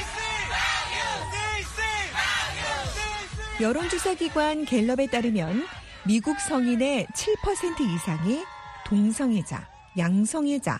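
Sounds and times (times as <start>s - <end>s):
large crowd at a gay pride parade chanting slogans: 0.0s - 6.8s
speech: 3.6s - 10.7s.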